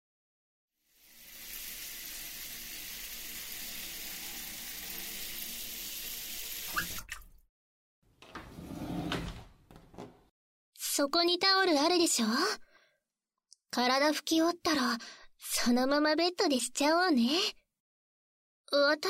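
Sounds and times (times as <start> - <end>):
shower water running: 0.9 - 7.2
water splashing: 6.7 - 7.4
speech: 11.0 - 12.6, 13.8 - 17.6, 18.7 - 19.0.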